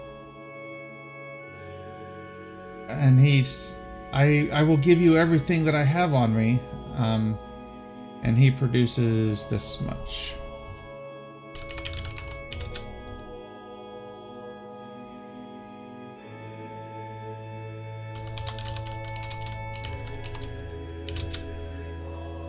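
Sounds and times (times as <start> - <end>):
speech: 2.9 - 7.4, 8.2 - 10.4
typing on a computer keyboard: 11.6 - 13.3, 18.2 - 21.8.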